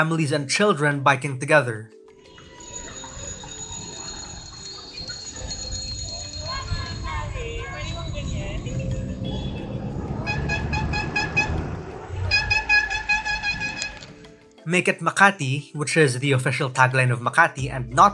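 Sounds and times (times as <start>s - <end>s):
speech: 0.0s - 2.0s, 14.7s - 18.1s
crowd chatter: 2.4s - 10.2s
traffic rumble on a busy street: 2.4s - 14.5s
cars and jeepneys honking horns in support of a protest: 7.0s - 14.4s.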